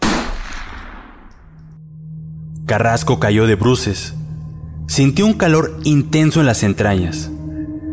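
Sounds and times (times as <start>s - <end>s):
single loud gunshot at night echoing: 0.0s - 1.7s
speech: 2.7s - 4.2s, 4.9s - 7.4s.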